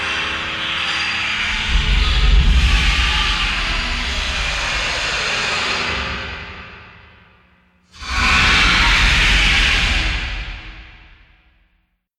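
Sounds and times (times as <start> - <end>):
horror metal scraping: 0.2 - 7.1, 7.9 - 11.4
crescendo boom: 1.4 - 6.9, 8.0 - 11.4.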